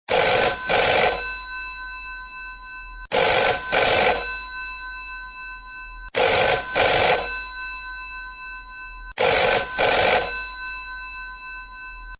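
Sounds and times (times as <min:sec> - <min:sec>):
old British phones ringing: 0:00.1 - 0:01.4, 0:03.1 - 0:04.5, 0:06.2 - 0:07.5, 0:09.2 - 0:11.5.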